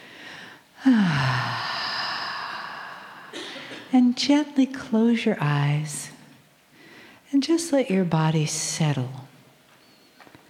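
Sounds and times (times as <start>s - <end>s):
deep breath drawn in during a guided relaxation: 0.0s - 3.8s, 6.8s - 7.2s
speech: 0.8s - 1.7s, 3.9s - 6.1s, 7.4s - 9.3s.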